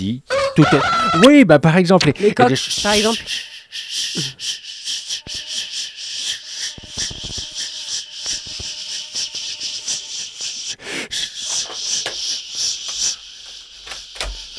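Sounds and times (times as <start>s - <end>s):
speech: 0.0s - 4.6s
rooster crowing loudly: 0.3s - 1.4s
short clucks and clicks: 0.3s - 1.4s, 2.0s - 14.5s
laughter: 0.3s - 14.0s.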